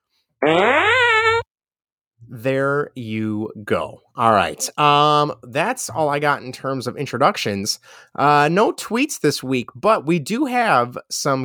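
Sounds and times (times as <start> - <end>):
speech: 0.4 - 0.7, 2.4 - 11.4
buzzy fart sound effect: 0.4 - 1.4.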